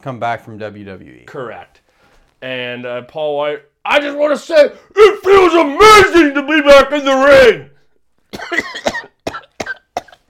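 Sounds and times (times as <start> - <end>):
speech: 0.0 - 1.8, 2.4 - 7.7
person coughing: 8.3 - 10.2.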